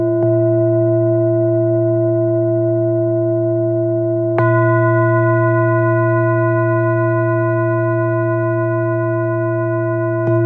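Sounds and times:
Tibetan singing bowls drone: 0.1s - 10.4s
soft Tibetan bowl strikes: 4.3s - 10.4s.

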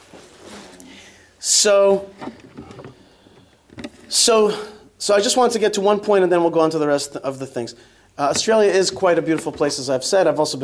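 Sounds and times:
speech: 1.4s - 2.6s, 4.1s - 10.6s
chair scraping and creaking across a wooden floor: 2.1s - 4.1s.

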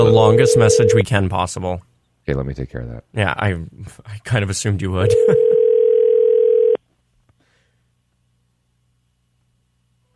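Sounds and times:
electronic ringback tone from an outgoing phone call: 0.0s - 1.0s, 5.0s - 6.8s
speech: 0.2s - 5.6s.

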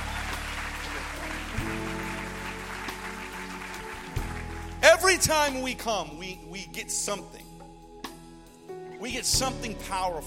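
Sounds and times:
crowd applauding: 0.0s - 5.2s
speech: 5.0s - 7.4s, 9.0s - 10.2s.

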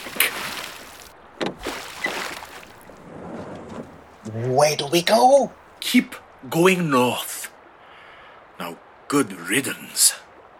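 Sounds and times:
oars dipping into river water as a small boat is rowed: 0.0s - 5.8s
speech: 4.4s - 7.3s, 8.7s - 10.3s.

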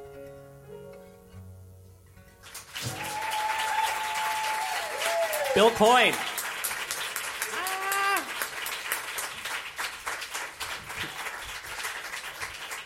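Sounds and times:
person clapping hands to his own song: 2.4s - 12.8s
rising whoop or whistle: 2.9s - 5.6s, 7.5s - 8.3s
speech: 5.6s - 6.3s.

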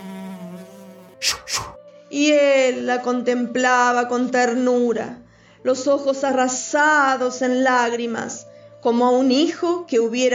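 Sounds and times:
flies buzzing: 0.0s - 1.8s
whooshing swipes shooing flies: 0.6s - 1.8s
speech: 1.2s - 10.3s.

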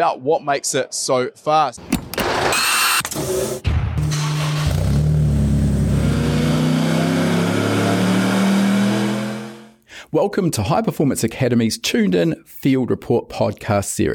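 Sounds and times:
speech: 0.0s - 3.8s, 10.1s - 14.1s
Corvette C5 time attack race car engine revving: 4.0s - 9.7s.

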